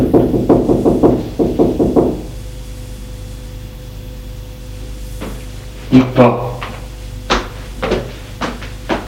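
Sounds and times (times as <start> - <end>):
firm hollow knocking on a door: 0.0 - 2.3
speech: 6.0 - 6.4.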